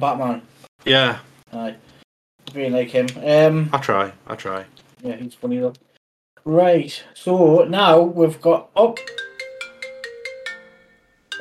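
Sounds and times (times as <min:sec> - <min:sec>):
speech: 0:00.0 - 0:01.9, 0:02.5 - 0:09.2
phone ringtone of bright electronic notes: 0:09.0 - 0:11.3.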